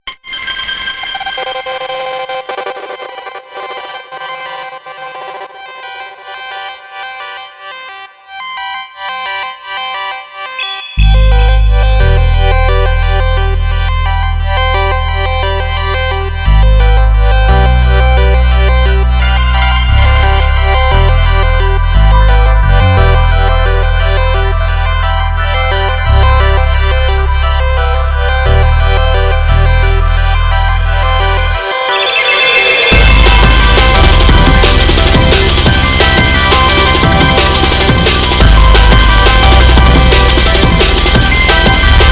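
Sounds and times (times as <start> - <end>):
full instrumental music: 10.6 - 42.1.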